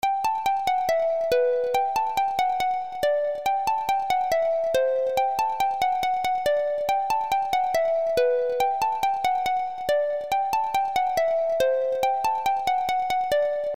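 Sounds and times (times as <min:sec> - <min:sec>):
harp melody: 0:00.0 - 0:13.7.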